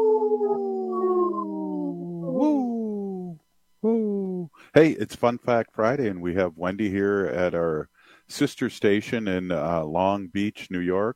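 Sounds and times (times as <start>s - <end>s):
voice imitating a wolf howl: 0.0s - 4.6s
speech: 4.8s - 11.1s.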